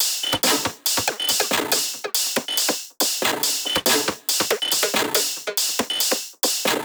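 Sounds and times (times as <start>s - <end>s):
drum top loops at 140: 0.0s - 6.8s.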